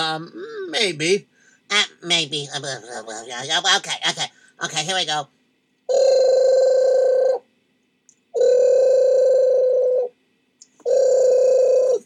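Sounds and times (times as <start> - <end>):
speech: 0.0 - 6.4
telephone ringing with a buzzy electronic trill: 5.9 - 7.3, 8.4 - 10.0, 10.9 - 12.0.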